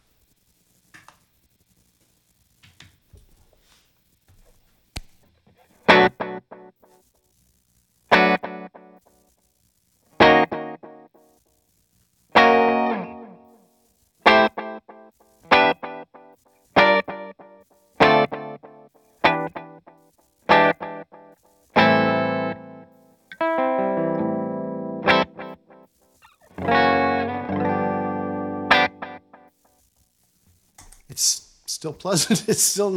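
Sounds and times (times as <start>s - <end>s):
electric guitar played through a delay effect: 12.4s - 13.5s, 14.3s - 25.8s, 26.6s - 29.5s
speech: 31.2s - 32.9s
laughter: 32.2s - 32.8s.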